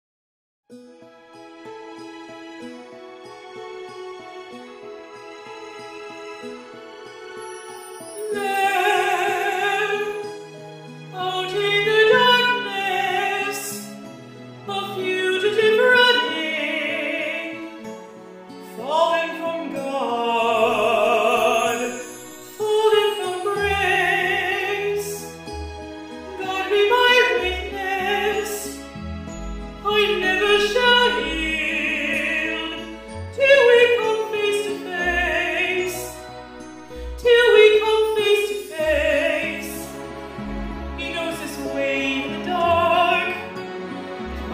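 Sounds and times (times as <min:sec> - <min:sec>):
person singing a Broadway cover: 0:08.1 - 0:10.5, 0:11.1 - 0:14.0, 0:14.6 - 0:25.4, 0:26.3 - 0:44.5.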